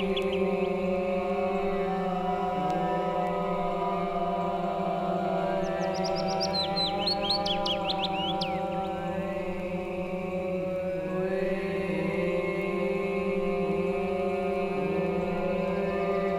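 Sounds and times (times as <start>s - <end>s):
Willow Warbler singing: 0.0s - 1.1s, 1.8s - 9.5s
loud steady humming music: 0.0s - 16.3s.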